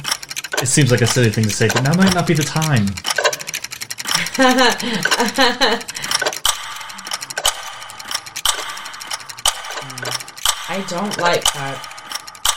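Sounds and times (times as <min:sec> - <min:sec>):
clocks ticking: 0:00.0 - 0:12.5
mechanical clatter: 0:00.0 - 0:12.5
speech: 0:00.6 - 0:03.2, 0:04.4 - 0:06.0, 0:10.8 - 0:11.9
laughter: 0:04.1 - 0:06.4
warbling voice-like tones: 0:09.7 - 0:10.4.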